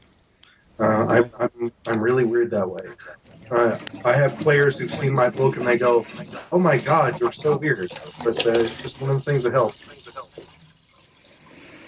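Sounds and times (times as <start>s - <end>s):
speech: 0.8s - 10.0s
running water from a faucet: 1.9s - 11.8s
brief brighter water splash: 3.0s - 11.8s.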